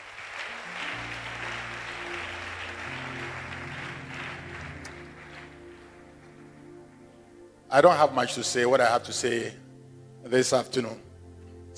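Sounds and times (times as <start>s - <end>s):
large crowd applause: 0.0s - 6.6s
organ or keyboard chords: 0.0s - 11.7s
speech: 7.7s - 9.6s, 10.3s - 11.1s.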